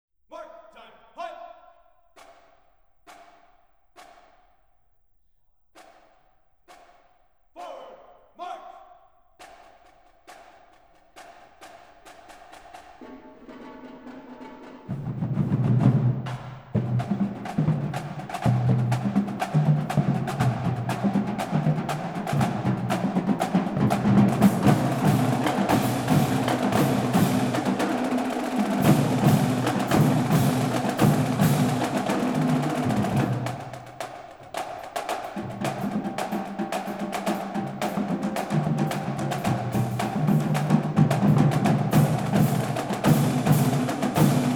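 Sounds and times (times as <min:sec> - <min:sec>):
marching band playing: 0:12.4 - 0:44.5.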